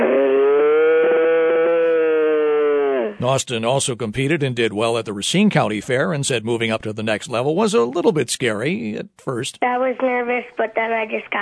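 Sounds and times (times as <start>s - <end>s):
boy imitating a cow moo in a mooing contest: 0.0s - 3.2s
speech: 3.2s - 11.4s.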